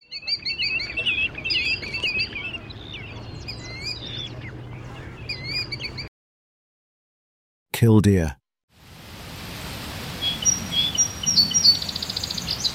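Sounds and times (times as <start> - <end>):
chestnut-sided warbler singing: 0.0 - 6.1, 10.2 - 12.7
speech: 7.8 - 8.4.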